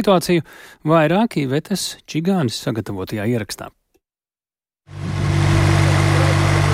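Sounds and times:
speech: 0:00.0 - 0:03.8
queue of idling diesel truck engines at a border checkpoint: 0:05.0 - 0:06.7.

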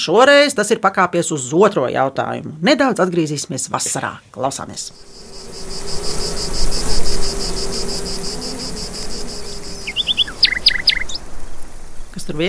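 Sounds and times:
speech: 0:00.0 - 0:06.5, 0:12.3 - 0:12.4
low steady insect buzz: 0:04.6 - 0:12.4
rapid even high chirping: 0:04.8 - 0:12.2
bright bird calls: 0:04.8 - 0:12.4.

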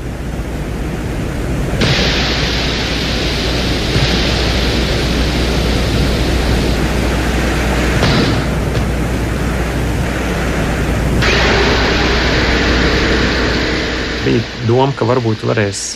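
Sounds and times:
low rumble on Venus: 0:00.0 - 0:15.9
steady hiss from a lander's microphone on Venus: 0:00.0 - 0:15.9
speech: 0:14.7 - 0:15.9.

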